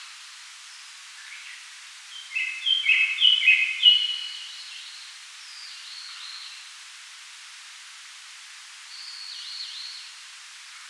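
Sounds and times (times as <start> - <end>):
Japanese thrush Turdus cardis whistled song: 2.2 - 4.4.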